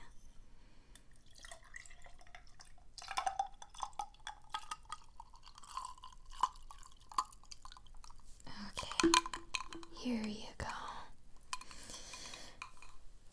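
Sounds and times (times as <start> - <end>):
whiskey being poured into a glass with ice cubes: 1.0 - 10.0
ice cubes clinking in a glass: 1.2 - 10.8, 11.4 - 13.3.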